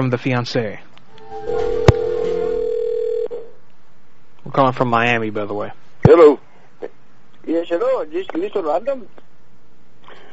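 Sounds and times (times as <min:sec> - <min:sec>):
speech: 0:00.0 - 0:01.9, 0:04.4 - 0:09.2
telephone dial tone: 0:01.9 - 0:03.4.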